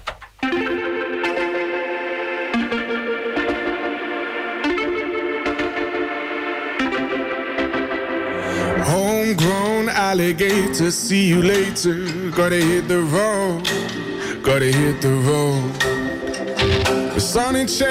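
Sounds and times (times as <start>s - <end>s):
upbeat pop song intro with bright layered instruments and punchy beat: 0.4s - 17.8s
speech: 10.2s - 16.0s, 17.2s - 17.8s.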